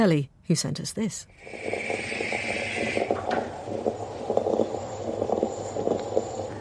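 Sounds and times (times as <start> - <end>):
speech: 0.0 - 2.2
moka pot gurgling and sputtering on a stove: 1.3 - 6.5.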